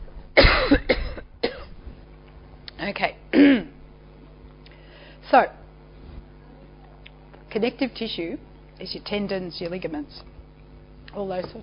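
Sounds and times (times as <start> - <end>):
person coughing: 0.4 - 1.7, 3.3 - 3.8
speech: 2.9 - 3.7, 5.3 - 5.6, 7.6 - 10.3, 11.1 - 11.6.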